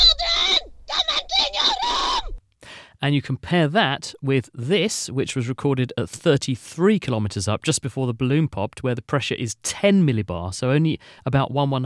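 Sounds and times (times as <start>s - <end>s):
human screaming recorded at ground level: 0.0s - 2.4s
speech: 3.0s - 11.8s.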